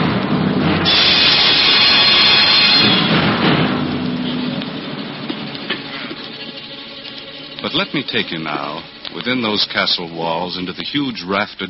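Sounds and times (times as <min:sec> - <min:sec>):
deep rumble of thunder: 0:00.0 - 0:09.0
heavy rain pouring in a storm: 0:00.0 - 0:11.5
speech: 0:07.8 - 0:11.6.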